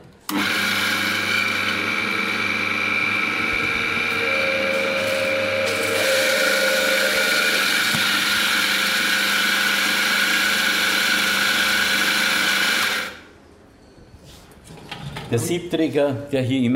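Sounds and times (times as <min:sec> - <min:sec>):
electric coffee grinder grinding coffee beans for espresso: 0:00.3 - 0:13.3
speech: 0:15.4 - 0:16.7.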